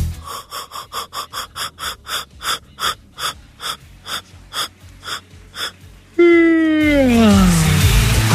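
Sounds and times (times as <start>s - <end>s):
quick rhythmic breathy gasps: 0.1s - 5.9s
loud drawn-out human yawn sliding downward in pitch: 0.2s - 8.1s.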